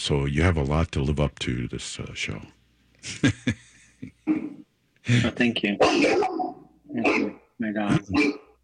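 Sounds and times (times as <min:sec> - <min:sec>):
speech: 0:00.0 - 0:04.2, 0:05.1 - 0:08.4
laughter: 0:03.0 - 0:04.3
dog barking and whimpering: 0:05.8 - 0:07.4, 0:08.1 - 0:08.6.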